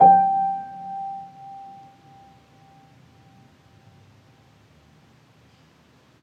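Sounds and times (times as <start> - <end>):
upright home piano G4 note: 0.0 - 3.3.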